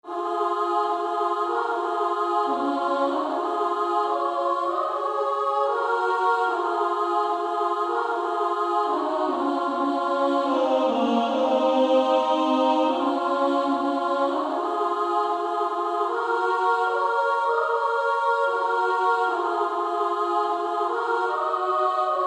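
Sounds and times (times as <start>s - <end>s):
female choir singing soprano and alto: 0.0s - 22.2s.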